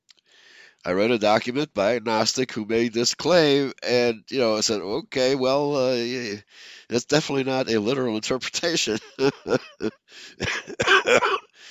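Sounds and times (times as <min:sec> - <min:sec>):
faint breathy exhale: 0:00.2 - 0:00.8, 0:06.5 - 0:06.9, 0:10.1 - 0:10.4
speech: 0:00.8 - 0:11.6
laughter: 0:08.9 - 0:11.4
harsh coughs: 0:10.3 - 0:11.6.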